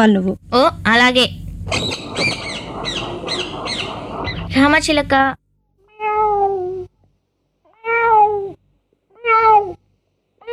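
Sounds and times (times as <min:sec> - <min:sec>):
speech: 0:00.0 - 0:03.9, 0:04.5 - 0:05.4
cat meowing: 0:05.9 - 0:06.9, 0:07.7 - 0:09.8.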